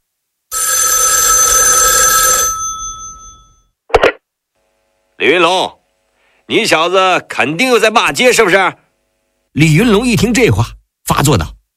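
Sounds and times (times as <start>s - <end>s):
telephone bell ringing: 0.5s - 3.7s
speech: 5.2s - 5.8s, 6.5s - 8.8s, 9.5s - 11.6s.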